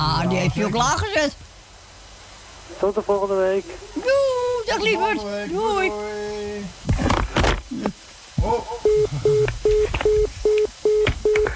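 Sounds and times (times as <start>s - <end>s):
speech: 0.0s - 1.5s, 2.7s - 7.1s, 7.7s - 10.2s
telephone line beeps at the end of a radio phone call: 8.9s - 11.5s.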